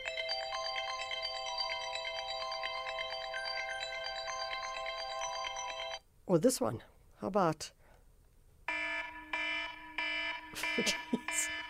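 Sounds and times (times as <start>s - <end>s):
phone alarm tone electronic melody: 0.0s - 6.0s, 8.7s - 11.6s
speech: 6.3s - 7.8s, 10.8s - 11.5s.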